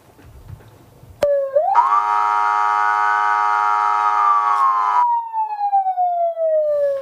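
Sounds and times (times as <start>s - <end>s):
alarm siren wailing: 1.2s - 7.0s.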